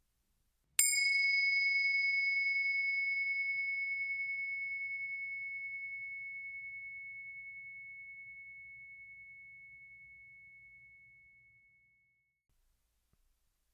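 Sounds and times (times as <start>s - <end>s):
meditation bell ringing: 0.8s - 11.6s.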